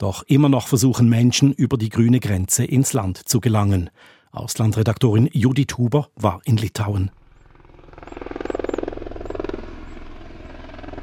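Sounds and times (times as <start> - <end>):
speech: 0.0 - 7.2
faint birdsong chirping: 6.8 - 11.0
helicopter rotor thumping over quiet border village: 7.1 - 11.0.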